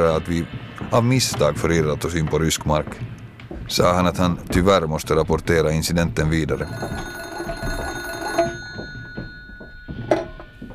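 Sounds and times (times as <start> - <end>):
speech: 0.0 - 7.8
old-fashioned telephone bell ringing: 6.6 - 10.7.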